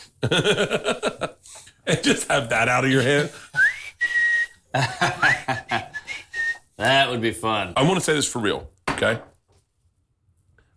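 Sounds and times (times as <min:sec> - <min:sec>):
speech: 0:00.2 - 0:01.2, 0:02.0 - 0:03.5, 0:04.7 - 0:05.7, 0:06.8 - 0:09.3
laughter: 0:00.2 - 0:03.5, 0:04.7 - 0:06.2
person whistling: 0:03.5 - 0:06.7.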